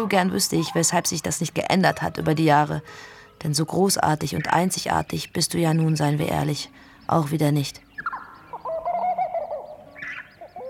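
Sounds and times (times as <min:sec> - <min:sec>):
speech: 0:00.0 - 0:07.8
bird cooing or hooting: 0:08.0 - 0:10.6.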